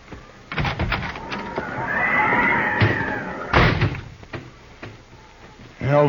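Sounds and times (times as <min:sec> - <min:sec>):
horse whinnying: 0:01.0 - 0:04.1.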